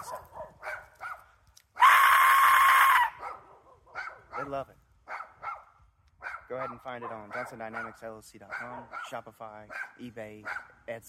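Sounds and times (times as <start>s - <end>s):
Aztec death whistle blown with a scream-like shriek: 1.8s - 3.2s
speech: 4.5s - 4.9s, 6.5s - 11.0s.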